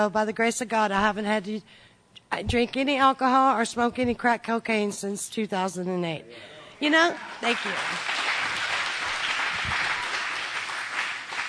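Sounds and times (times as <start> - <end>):
speech: 0.0 - 8.2
crowd applauding: 7.2 - 11.4.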